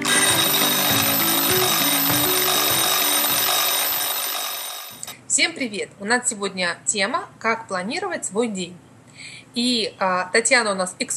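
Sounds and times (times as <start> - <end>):
low stepping melody: 0.0 - 4.6
alarm clock ringing with a harsh metallic jangle: 0.0 - 5.1
speech: 5.4 - 8.9, 9.5 - 11.1.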